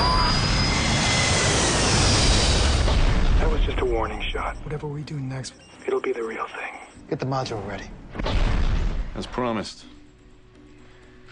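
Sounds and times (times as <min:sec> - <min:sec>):
jet airliner engines roaring as plane pulls up: 0:00.0 - 0:04.5
speech: 0:04.4 - 0:08.5, 0:09.2 - 0:09.9.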